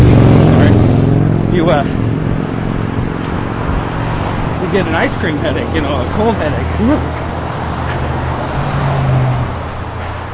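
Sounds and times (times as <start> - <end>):
road traffic with cars going by: 0.0 - 10.3
speech: 1.6 - 2.0, 4.7 - 7.2.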